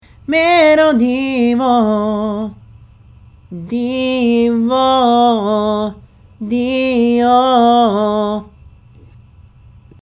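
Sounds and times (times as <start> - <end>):
person singing: 0.3 - 2.6, 3.5 - 8.5.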